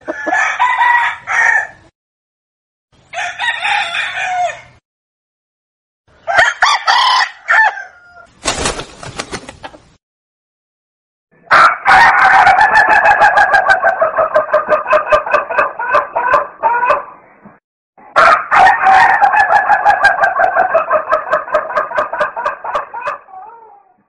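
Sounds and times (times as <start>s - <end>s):
hen clucking: 0.0s - 0.6s, 12.6s - 17.2s, 19.4s - 23.4s
rooster crowing: 0.0s - 1.9s, 3.1s - 4.8s, 6.2s - 8.3s, 11.5s - 17.0s, 18.1s - 24.0s.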